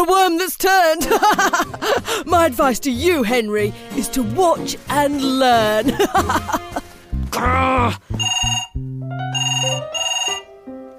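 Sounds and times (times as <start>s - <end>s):
speech: 0.0s - 10.0s
laughter: 1.0s - 2.2s, 5.8s - 6.9s
telephone ringing with a bright electronic melodic ringtone: 8.2s - 10.5s.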